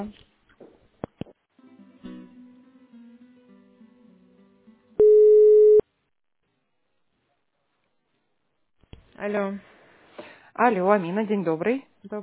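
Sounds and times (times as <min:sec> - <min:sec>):
speech: 0:00.0 - 0:00.2, 0:09.2 - 0:09.7, 0:10.6 - 0:12.2
telephone line tone while a call is put through to a supply department: 0:05.0 - 0:05.8.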